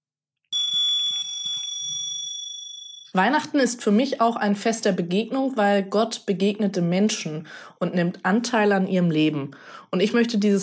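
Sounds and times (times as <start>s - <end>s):
bright metallic bell ringing: 0.5s - 3.2s
speech: 3.1s - 10.6s.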